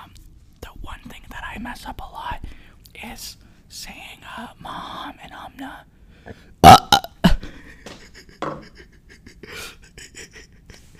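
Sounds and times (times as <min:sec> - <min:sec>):
speech: 0:01.6 - 0:02.4, 0:03.0 - 0:06.8
person burping: 0:06.6 - 0:07.4.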